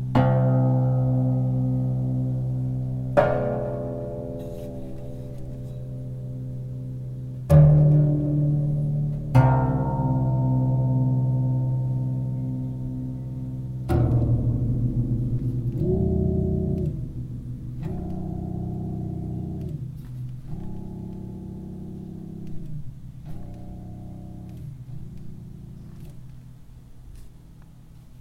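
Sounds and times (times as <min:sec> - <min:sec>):
lever harp playing: 0:00.1 - 0:26.1.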